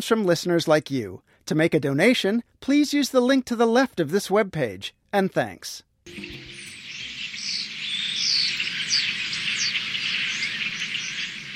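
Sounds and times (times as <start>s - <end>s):
speech: 0.0s - 6.4s
tree swallow flock chattering at the Connecticut River: 6.1s - 11.5s.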